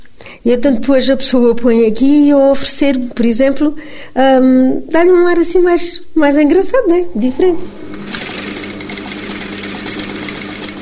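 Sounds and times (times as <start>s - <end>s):
speech: 0.4s - 7.9s
sewing machine running for handmade craft work: 7.9s - 10.7s.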